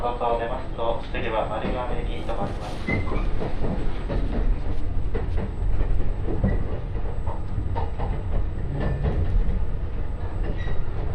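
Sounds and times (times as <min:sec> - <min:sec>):
speech: 0:00.0 - 0:04.4
limited express train running on rails in Japan heard from on board: 0:00.0 - 0:11.1.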